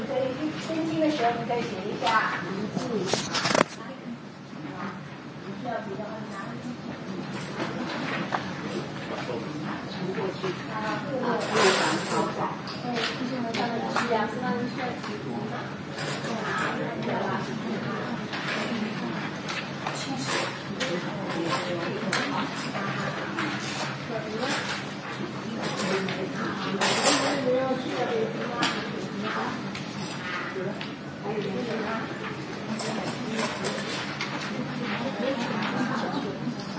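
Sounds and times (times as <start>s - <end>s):
low murmur of people: 0.0s - 36.7s
speech: 1.2s - 3.6s, 12.7s - 17.6s
rustling and crinkling of paper worksheets being handed out: 2.8s - 3.8s.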